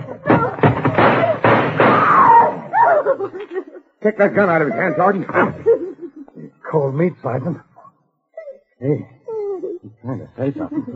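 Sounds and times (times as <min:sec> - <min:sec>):
door being kicked in: 0:00.2 - 0:02.5
laughter: 0:02.8 - 0:06.7, 0:09.5 - 0:10.9
speech: 0:03.1 - 0:05.7, 0:06.7 - 0:07.7, 0:08.8 - 0:09.2, 0:09.8 - 0:10.9.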